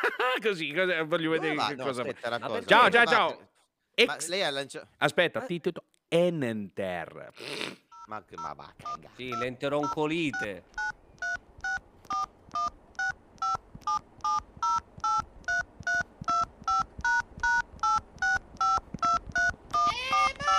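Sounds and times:
laughter: 0:00.0 - 0:00.6
speech: 0:00.1 - 0:11.3
telephone keypad tones dialing a long phone number: 0:08.0 - 0:20.4.

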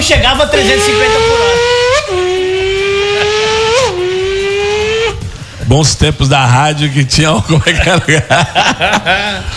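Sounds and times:
speech: 0:00.0 - 0:02.3, 0:05.7 - 0:09.5
motorcycle engine revving: 0:00.2 - 0:05.5
laughter: 0:02.9 - 0:04.4, 0:07.4 - 0:09.5.

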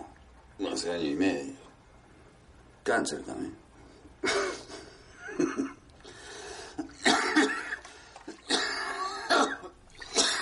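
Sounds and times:
speech: 0:00.8 - 0:01.6, 0:02.9 - 0:04.6
man coughing while smoking: 0:04.2 - 0:04.7, 0:06.9 - 0:07.8, 0:08.4 - 0:10.4.

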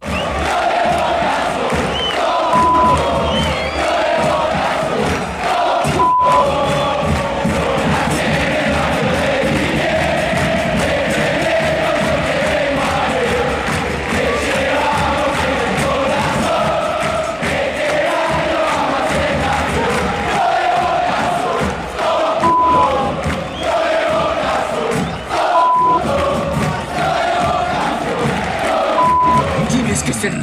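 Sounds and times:
large crowd of football supporters singing a terrace chant: 0:00.0 - 0:30.3.

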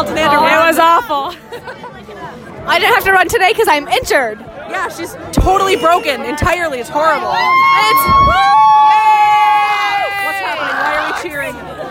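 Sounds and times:
general crowd hubbub: 0:00.0 - 0:11.8
speech: 0:01.0 - 0:09.2
small crowd cheering and yelling at a sports game: 0:05.4 - 0:11.8.

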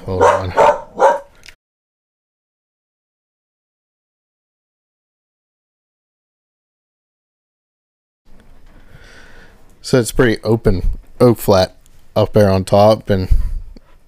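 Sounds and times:
speech: 0:00.0 - 0:00.7, 0:09.8 - 0:13.5
dog barking: 0:00.0 - 0:01.4.

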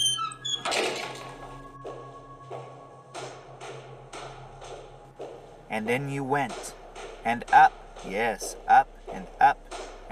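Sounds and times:
heavy watertight bronze door creaking open at the base of a lighthouse: 0:00.0 - 0:01.8
low steady hum: 0:01.0 - 0:10.1
speech: 0:05.8 - 0:10.1.

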